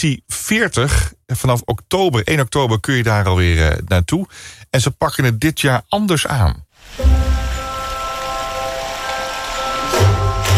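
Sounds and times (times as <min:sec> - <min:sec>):
speech: 0:00.0 - 0:07.3
steady rain pattering on a greenhouse roof overhead: 0:06.8 - 0:10.5.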